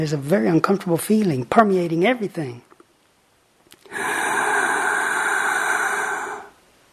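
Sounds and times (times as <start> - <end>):
speech: 0.0 - 2.7
sharp gasping inhale after holding breath with nose and mouth closed: 3.8 - 6.6.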